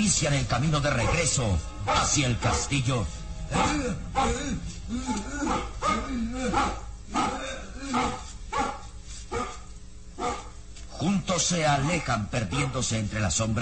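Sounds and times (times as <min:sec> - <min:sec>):
speech: 0:00.0 - 0:08.2, 0:11.0 - 0:13.6
mastiff barking: 0:01.0 - 0:02.7, 0:03.5 - 0:04.4, 0:05.4 - 0:10.6.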